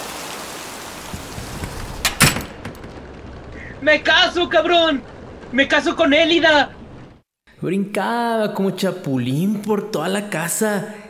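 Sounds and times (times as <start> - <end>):
heavy rain pouring: 0.0 - 7.2
speech: 3.8 - 6.8, 7.6 - 11.0.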